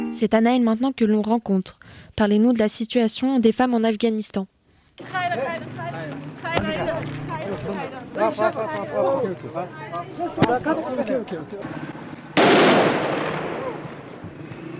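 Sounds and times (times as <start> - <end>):
speech: 0.2 - 5.7, 6.5 - 11.9
crowd of women chanting and shouting in the street: 5.0 - 9.1
sharp gunshot cracks at a street protest: 12.3 - 14.0
loud harsh burst of gunfire at a street protest: 12.3 - 14.1.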